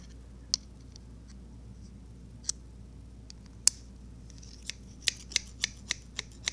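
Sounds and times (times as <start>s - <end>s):
quiet low hum: 0.0s - 6.5s
scissors snipping: 4.5s - 6.5s.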